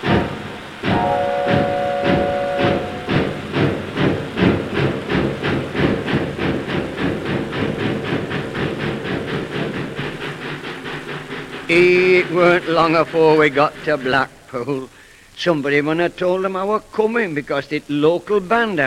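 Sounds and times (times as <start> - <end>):
steam train chuffing pulling away: 0.0 - 18.8
steam train whistle: 0.8 - 3.4
speech: 11.7 - 18.8.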